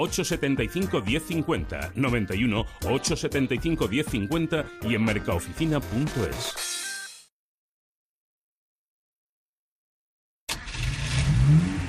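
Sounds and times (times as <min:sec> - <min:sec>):
speech: 0:00.0 - 0:06.8
racing car engine revving hard: 0:10.5 - 0:11.8.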